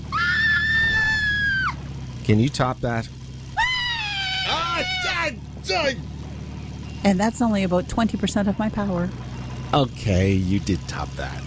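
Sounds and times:
person screaming high-pitched: 0:00.1 - 0:01.8, 0:03.6 - 0:05.3
speech: 0:02.3 - 0:03.2, 0:04.8 - 0:06.1, 0:07.0 - 0:11.4.

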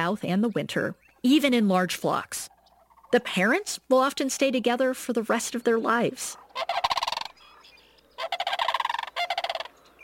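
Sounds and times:
speech: 0:00.0 - 0:02.5, 0:03.1 - 0:06.9
Sandhill crane rattled trumpeting calls: 0:06.3 - 0:10.0.

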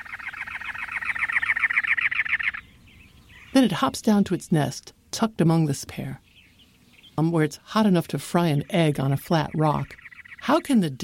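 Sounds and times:
cactus wren singing perched atop a cactus in the Arizona desert: 0:00.0 - 0:04.5, 0:05.8 - 0:11.0
speech: 0:03.5 - 0:06.2, 0:07.2 - 0:11.0.

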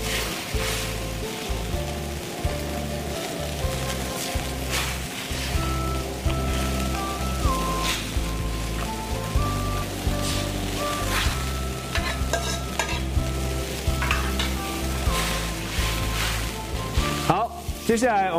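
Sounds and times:
soy sauce sizzling along the edge of a hot pot: 0:00.0 - 0:18.3.

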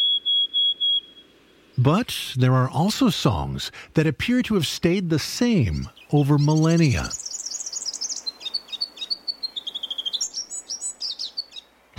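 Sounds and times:
Forest Double-collared Sunbird song: 0:00.0 - 0:03.6, 0:04.2 - 0:11.9
speech: 0:01.8 - 0:07.2.

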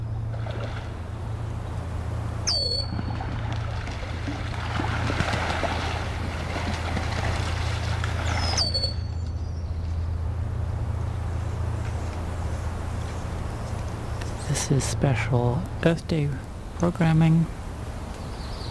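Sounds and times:
low engine-like drone: 0:00.0 - 0:18.7
Virginia rail splashing in marsh water: 0:00.2 - 0:09.2
speech: 0:14.7 - 0:17.6.

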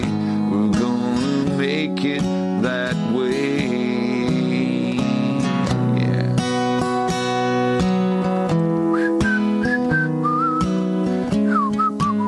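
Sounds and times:
steady strummed accompaniment: 0:00.0 - 0:12.2
person whistling a melody in a studio in New York: 0:08.9 - 0:12.2.

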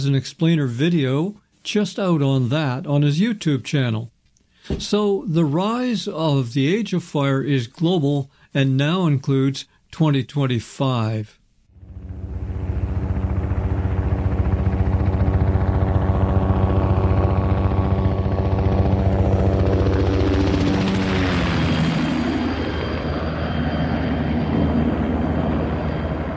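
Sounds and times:
speech: 0:00.0 - 0:04.1, 0:04.7 - 0:11.4
firefighting helicopter rotor thrumming over hills: 0:11.8 - 0:26.3.

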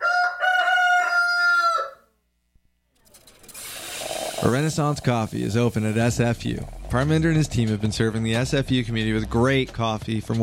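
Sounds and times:
rooster crowing: 0:00.0 - 0:02.1
speech: 0:04.4 - 0:10.4.

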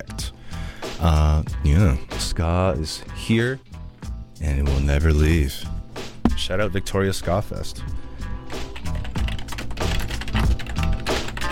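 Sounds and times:
speech: 0:01.0 - 0:03.7, 0:04.4 - 0:05.8, 0:06.4 - 0:08.0
typing on a laptop keyboard: 0:08.8 - 0:11.5.

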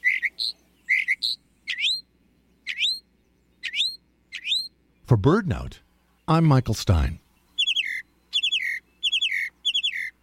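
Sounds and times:
Northern Mockingbird song with whistled upslurs: 0:00.0 - 0:04.8, 0:07.4 - 0:10.2
speech: 0:05.1 - 0:07.2.

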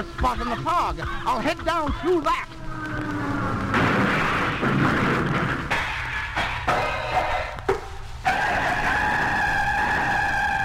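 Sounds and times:
speech: 0:00.0 - 0:03.1
small airplane's failing motor roaring: 0:02.4 - 0:07.2, 0:08.2 - 0:10.6.

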